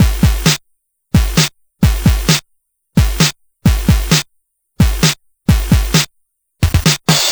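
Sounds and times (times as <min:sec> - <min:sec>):
8-bit Game Boy chiptune drum loop: 0:00.0 - 0:00.6, 0:01.2 - 0:02.4, 0:03.0 - 0:04.2, 0:04.8 - 0:07.2.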